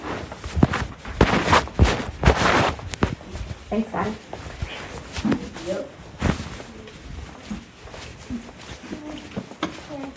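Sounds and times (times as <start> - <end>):
footsteps on a hard floor: 0.0 - 10.1
speech: 3.7 - 4.4, 5.2 - 6.0.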